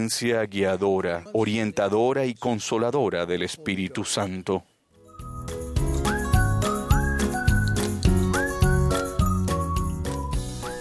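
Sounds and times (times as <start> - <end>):
speech: 0.0 - 4.7
bouncy backing music: 5.0 - 10.8
cheerful whistled jingle: 5.1 - 10.8.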